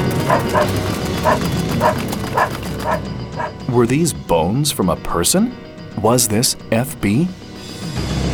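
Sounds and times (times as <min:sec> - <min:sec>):
dog barking loudly: 0:00.1 - 0:03.6
speech: 0:00.5 - 0:02.1, 0:03.7 - 0:08.2.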